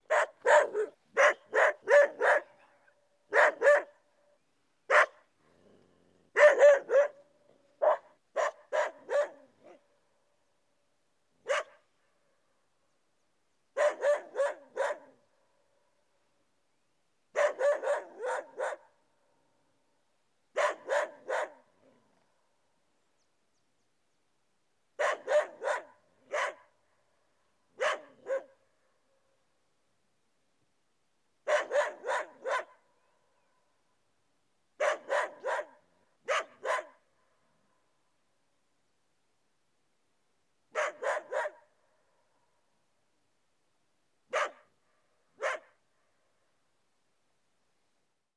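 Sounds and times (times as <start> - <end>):
dog in the Puna of Arequipa: 0.1 - 4.0, 4.9 - 7.2, 7.8 - 9.8, 11.5 - 11.8, 13.8 - 15.2, 17.4 - 18.9, 20.6 - 22.0, 25.0 - 26.7, 27.8 - 28.6, 31.5 - 32.8, 34.8 - 37.0, 40.8 - 41.6, 44.3 - 44.7, 45.4 - 45.8.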